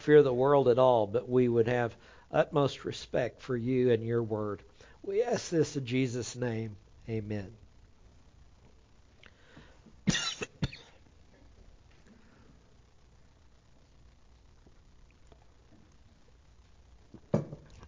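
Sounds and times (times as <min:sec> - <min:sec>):
speech: 0:00.0 - 0:07.6
faint low hum: 0:00.0 - 0:17.8
person clearing throat warming up the voice before singing: 0:10.1 - 0:11.0
person coughing: 0:10.1 - 0:11.0.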